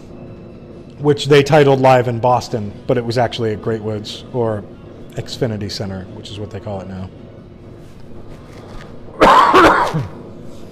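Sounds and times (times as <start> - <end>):
speech: 1.0 - 7.2, 9.9 - 10.2
person coughing roughly: 9.2 - 10.2.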